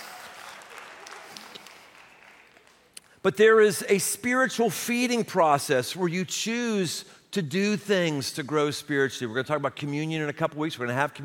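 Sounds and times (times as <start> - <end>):
room full of people applauding: 0.0 - 3.2
speech: 3.2 - 11.2.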